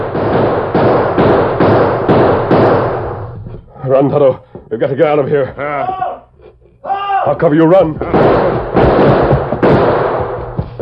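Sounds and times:
loud gunshots exchanged across a street in a shootout with booming echoes: 0.0s - 3.3s, 7.8s - 10.8s
speech: 3.9s - 6.1s, 7.2s - 9.3s.

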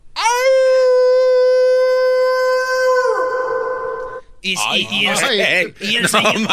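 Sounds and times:
person imitating a wolf howl with echo effect: 0.2s - 4.2s
speech: 4.4s - 6.5s
laughter: 4.8s - 6.5s.

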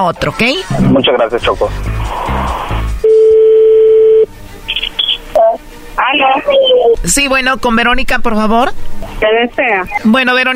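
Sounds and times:
speech: 0.0s - 2.4s, 6.1s - 10.5s
telephone dialing beeps: 3.0s - 4.3s.

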